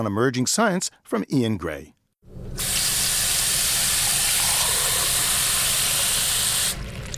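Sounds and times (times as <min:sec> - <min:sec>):
speech: 0:00.0 - 0:02.0
water pouring into a big glass: 0:02.4 - 0:07.1.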